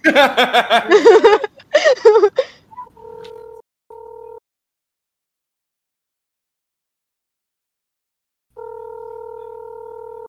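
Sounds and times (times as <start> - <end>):
laughter: 0.0 - 2.4
phone ringing with an electronic tone: 3.0 - 4.4, 8.6 - 10.2.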